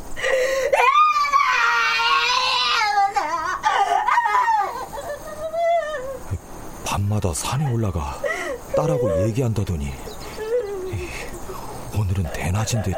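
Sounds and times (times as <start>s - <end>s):
woman crying lying face down on a wooden floor: 0.2s - 6.4s, 8.2s - 9.4s, 10.2s - 11.8s
speech: 7.2s - 10.1s, 12.0s - 12.9s.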